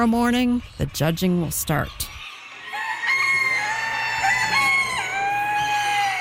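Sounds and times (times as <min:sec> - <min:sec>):
speech: 0:00.0 - 0:02.1
chickens clucking at a fairground poultry show: 0:00.0 - 0:06.1
roosters crowing at a fairground poultry show: 0:02.1 - 0:06.1.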